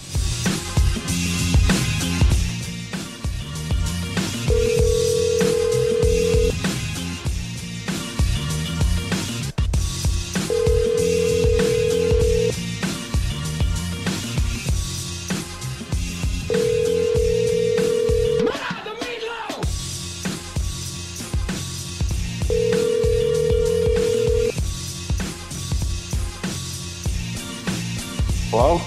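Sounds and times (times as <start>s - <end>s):
busy music: 0.0s - 28.8s
phone line ringback tone with no answer: 4.5s - 6.6s, 10.5s - 12.6s, 16.5s - 18.5s, 22.5s - 24.5s.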